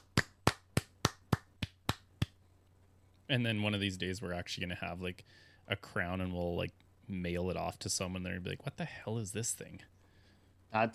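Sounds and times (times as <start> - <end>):
hand claps from a single pair of hands: 0.0 - 2.4
speech: 3.3 - 10.0, 10.7 - 10.9.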